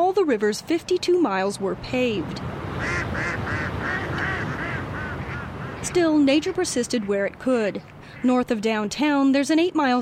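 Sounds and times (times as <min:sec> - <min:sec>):
speech: 0:00.1 - 0:03.6, 0:05.8 - 0:10.0
ducks quacking along a river: 0:02.8 - 0:07.3.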